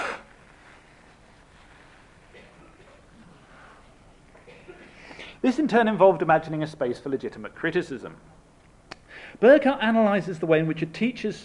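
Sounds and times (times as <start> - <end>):
person with a cold blowing nose: 0.0 - 0.3
hiss: 0.0 - 11.4
faint rustling: 0.4 - 4.5
speech: 5.4 - 8.4, 9.4 - 11.4.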